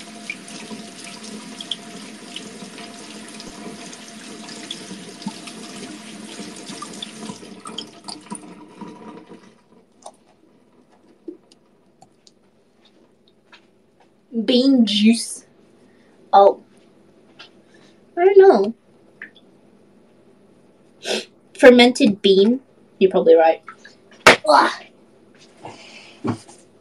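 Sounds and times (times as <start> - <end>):
running tap water rinsing canned beans in a sink: 0.0 - 10.2
speech: 14.4 - 15.4, 16.4 - 16.6, 21.6 - 23.8, 24.4 - 24.9, 26.2 - 26.4.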